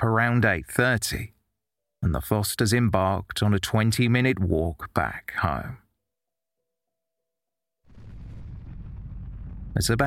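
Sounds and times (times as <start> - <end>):
speech: 0.0 - 1.4, 2.0 - 5.8, 9.8 - 10.0
deafening explosion with heavy roaring low rumble: 7.9 - 10.0.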